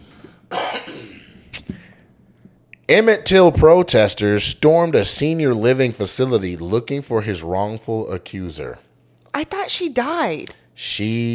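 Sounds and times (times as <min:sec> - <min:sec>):
person clearing throat forcefully: 0:00.5 - 0:01.8
speech: 0:02.9 - 0:08.8, 0:09.4 - 0:11.3.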